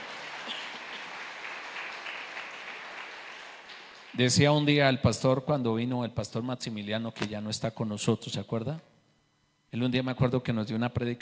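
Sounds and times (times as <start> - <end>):
crowd clapping: 0.0 - 4.4
speech: 4.2 - 8.9, 9.7 - 11.2.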